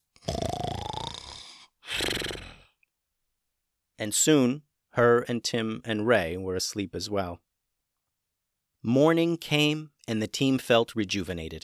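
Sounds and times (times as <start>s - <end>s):
donkey snoring: 0.3s - 2.7s
speech: 4.0s - 7.4s, 8.8s - 11.6s.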